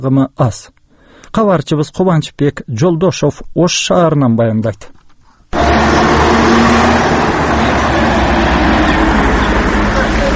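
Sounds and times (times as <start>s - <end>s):
speech: 0.0s - 5.0s
light street traffic of car and heavy vehicle engines in central Osh streets: 5.6s - 10.3s.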